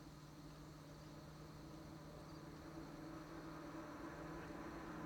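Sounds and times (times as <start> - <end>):
general noise next to road: 0.1 - 5.0.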